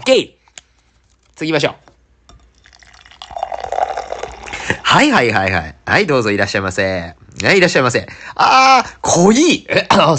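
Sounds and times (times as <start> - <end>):
speech: 0.0 - 0.4, 1.4 - 1.9, 4.9 - 10.1
beer poured into a mug: 2.3 - 4.9.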